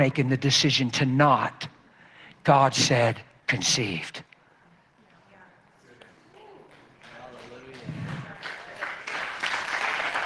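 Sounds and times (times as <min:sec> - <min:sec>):
speech: 0:00.0 - 0:01.7, 0:02.4 - 0:04.2
crowd clapping: 0:06.7 - 0:10.2.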